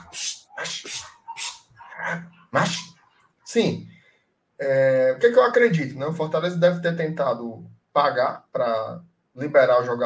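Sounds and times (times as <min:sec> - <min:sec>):
dogs barking: 0:00.0 - 0:03.6
speech: 0:02.1 - 0:02.9, 0:03.6 - 0:03.9, 0:04.6 - 0:10.0.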